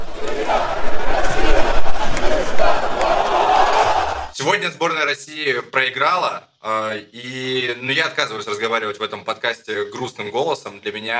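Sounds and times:
large stadium crowd chanting and roaring from the stands: 0.0 - 4.4
speech: 4.5 - 11.1.

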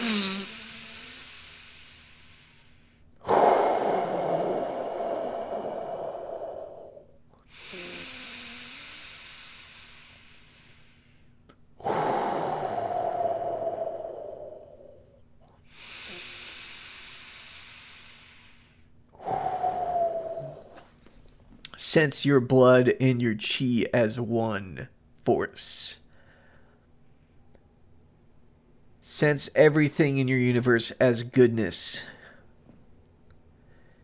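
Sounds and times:
slow deep breathing: 0.0 - 21.3, 26.1 - 27.7, 33.4 - 34.0
speech: 21.9 - 26.0, 29.2 - 32.2.

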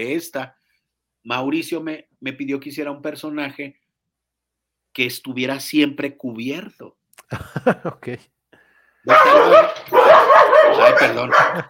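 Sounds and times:
speech: 0.0 - 0.6, 1.2 - 3.8, 5.0 - 8.3, 9.0 - 11.6
laughter: 7.3 - 8.2, 10.8 - 11.6
dogs barking and yipping: 9.1 - 11.6.

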